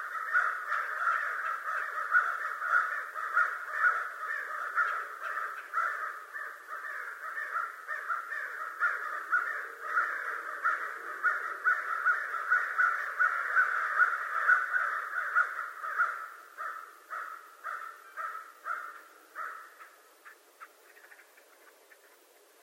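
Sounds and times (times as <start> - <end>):
American crow rough caws: 0.0 - 22.1.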